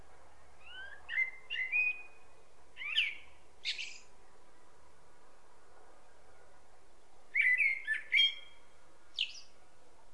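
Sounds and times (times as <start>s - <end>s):
common blackbird singing: 0.6s - 4.1s, 7.3s - 9.6s.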